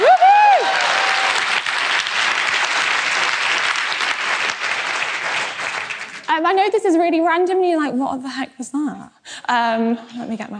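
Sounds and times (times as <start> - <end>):
whistle or whoop: 0.0 - 1.2
room full of people applauding: 0.0 - 6.4
speech: 6.4 - 10.5.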